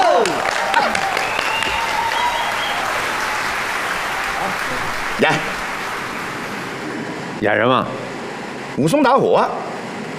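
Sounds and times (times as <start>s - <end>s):
audience applause welcoming a comic performer on stage: 0.0s - 6.9s
whistle-like tones: 0.8s - 5.1s
speech: 5.2s - 5.6s, 7.4s - 8.1s, 8.8s - 9.6s.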